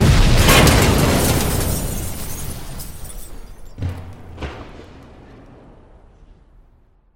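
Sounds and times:
eerie tin rattling crash: 0.3s - 4.8s.

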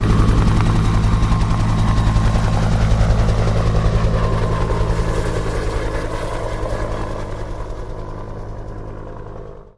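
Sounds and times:
helicopter flying away into the distance: 0.0s - 9.7s.

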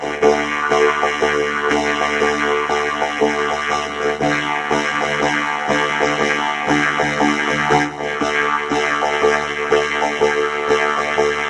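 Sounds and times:
sitar monotonous vibrating drone: 0.0s - 11.4s.

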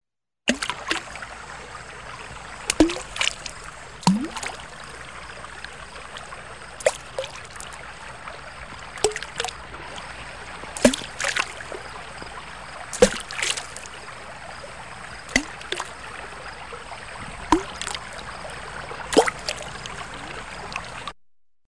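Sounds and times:
small stone falling into a river: 0.5s - 1.2s, 2.6s - 4.8s, 5.6s - 7.8s, 9.0s - 10.1s, 10.8s - 11.6s, 12.9s - 14.0s, 15.2s - 16.0s, 17.3s - 18.3s, 19.1s - 19.6s.

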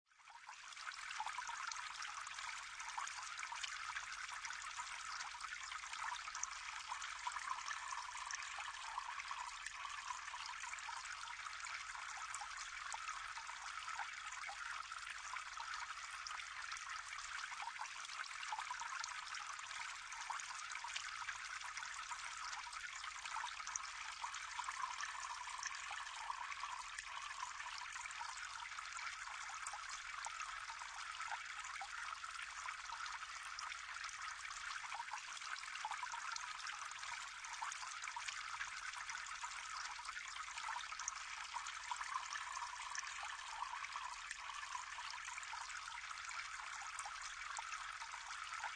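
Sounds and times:
stream of water in a brook: 0.1s - 48.7s.

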